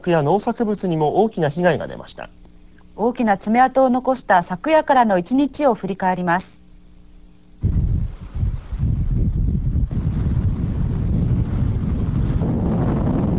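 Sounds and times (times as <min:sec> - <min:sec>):
speech: 0:00.0 - 0:02.4, 0:03.0 - 0:06.6
strong typhoon wind gusts buffeting the microphone: 0:07.6 - 0:13.3.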